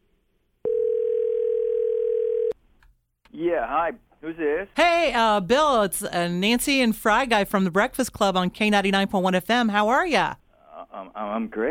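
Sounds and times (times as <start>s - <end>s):
telephone ringback tone on an outgoing call: 0.6s - 2.6s
speech: 3.4s - 11.7s.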